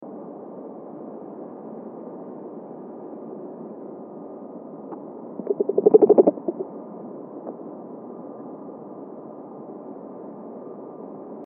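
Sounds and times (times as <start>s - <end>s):
dolphins: 5.4s - 6.6s.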